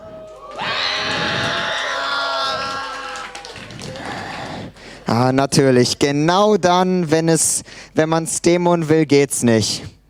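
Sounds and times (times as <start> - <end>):
scattered shouts: 0.0 - 3.5
audience screaming on request: 0.0 - 4.4
speech: 5.1 - 10.0.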